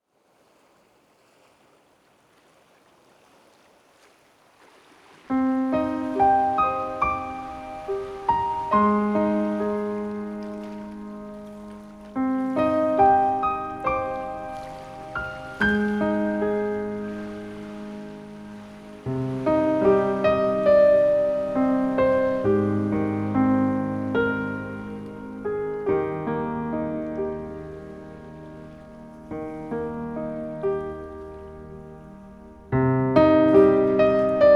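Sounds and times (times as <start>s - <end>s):
nature sounds: 0.0s - 34.5s
piano: 5.3s - 34.5s.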